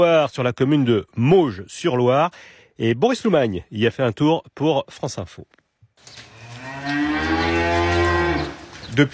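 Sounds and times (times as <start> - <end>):
speech: 0.0 - 7.3, 8.9 - 9.1
dairy cow mooing under a large shed on a dairy farm in France: 6.3 - 8.6.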